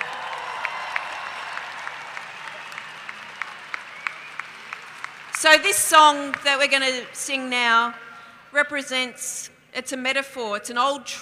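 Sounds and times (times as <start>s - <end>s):
crowd applauding: 0.0s - 7.1s
speech: 5.4s - 11.2s.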